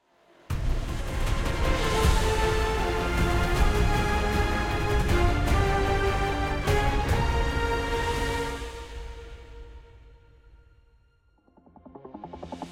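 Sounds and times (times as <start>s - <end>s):
triumphant victory music intro: 1.2s - 9.6s.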